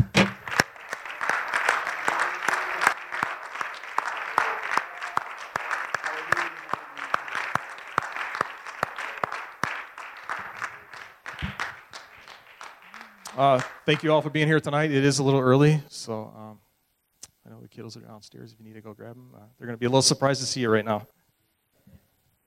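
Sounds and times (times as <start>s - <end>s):
audience applause: 0.0s - 14.4s
speech: 13.4s - 16.4s, 17.8s - 21.2s.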